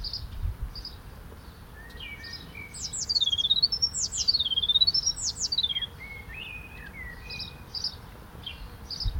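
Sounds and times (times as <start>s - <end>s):
Eurasian blue tit Cyanistes caeruleus calling: 1.8s - 9.1s.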